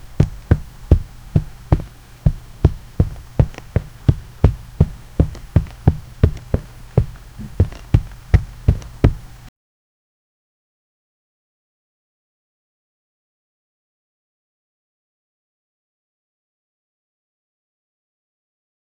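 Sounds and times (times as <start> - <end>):
footstep: 0.0 - 9.5.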